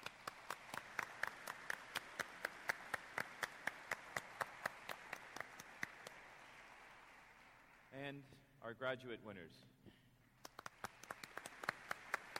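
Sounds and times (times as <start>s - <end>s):
audience round of applause for undergraduate finalists: 0.0s - 7.9s, 10.4s - 12.3s
speech: 8.1s - 9.8s.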